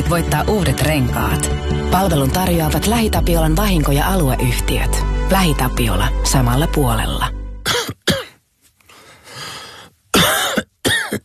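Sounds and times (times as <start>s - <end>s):
speech: 0.1s - 7.4s
person coughing harshly: 7.6s - 8.4s, 10.1s - 11.2s
rough wheezy breath: 8.8s - 10.0s.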